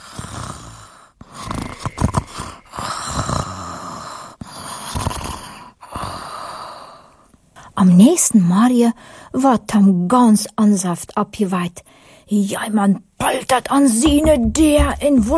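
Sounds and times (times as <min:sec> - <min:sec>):
rough rhythmic snoring with rasping breaths: 0:00.0 - 0:07.2
steady breathing: 0:00.0 - 0:07.8, 0:09.0 - 0:09.4, 0:11.8 - 0:12.3
speech: 0:07.9 - 0:15.3.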